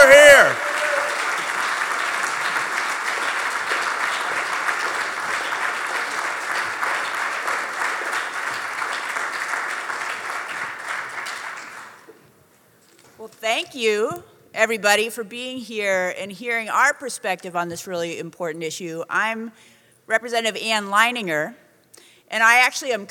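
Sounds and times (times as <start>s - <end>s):
audience cheering at an event on marijuana legalization: 0.0s - 7.2s
audience applause at an event on marijuana legalization: 0.0s - 12.1s
speech: 13.8s - 21.6s, 22.3s - 23.1s.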